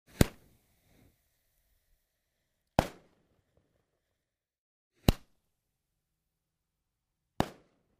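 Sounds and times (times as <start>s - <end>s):
small firecracker explosion: 0.1s - 1.1s, 2.7s - 4.0s, 5.0s - 5.5s, 7.4s - 7.9s.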